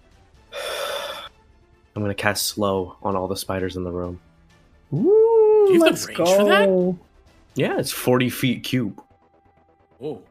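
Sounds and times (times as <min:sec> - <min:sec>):
person gasping in panicked breath: 0:00.6 - 0:01.3
speech: 0:02.0 - 0:04.3, 0:04.9 - 0:09.1, 0:10.0 - 0:10.3.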